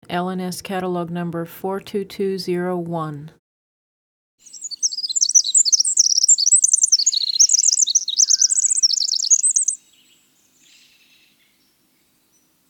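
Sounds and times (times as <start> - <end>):
speech: 0.1 - 3.4
winter wren song: 4.4 - 12.5.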